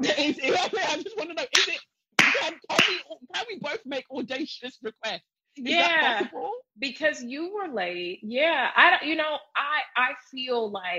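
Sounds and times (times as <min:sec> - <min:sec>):
laughter: 0:00.0 - 0:01.8, 0:02.4 - 0:06.6
slap sound effect: 0:01.5 - 0:03.5
speech: 0:05.1 - 0:06.3, 0:06.9 - 0:10.9.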